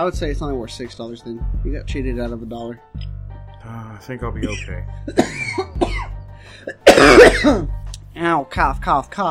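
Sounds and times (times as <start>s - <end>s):
speech: 0.0s - 5.7s, 6.5s - 9.2s
person coughing with short hacking coughs: 4.4s - 7.7s.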